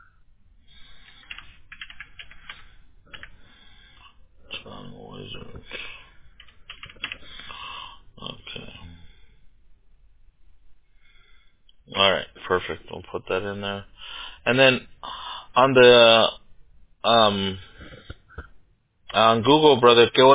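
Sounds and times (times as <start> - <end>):
fingers typing on a computer keyboard: 1.0 - 3.4, 6.4 - 7.3
speech: 12.5 - 14.9, 15.6 - 16.4, 17.0 - 17.6, 19.1 - 20.3.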